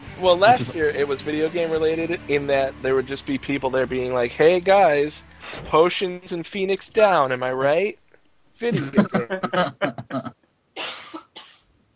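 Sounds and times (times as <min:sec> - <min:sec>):
speech: 0:00.2 - 0:08.0, 0:08.6 - 0:11.0
laughter: 0:00.5 - 0:00.8, 0:08.7 - 0:10.3
person coughing: 0:08.8 - 0:11.6.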